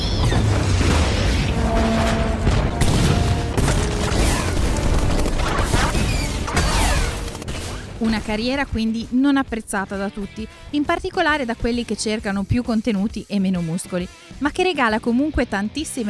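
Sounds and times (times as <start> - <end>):
action film booming explosions: 0.1 - 8.8
action film metallic crashes: 0.4 - 8.0
swelling music-like tones: 1.2 - 8.9
speech: 8.2 - 16.0.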